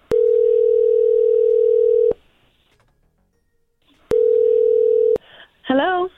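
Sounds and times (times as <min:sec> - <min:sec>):
phone ringback tone: 0:00.1 - 0:02.2, 0:04.1 - 0:05.2.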